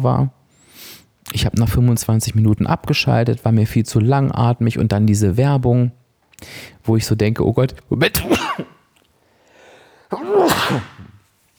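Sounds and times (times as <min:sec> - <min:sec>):
speech: 0:00.0 - 0:00.4, 0:01.3 - 0:08.6, 0:10.1 - 0:10.9
quiet intake of breath: 0:00.5 - 0:01.2, 0:06.4 - 0:06.8, 0:09.2 - 0:10.1
person sneezing: 0:08.0 - 0:08.9, 0:10.1 - 0:11.3.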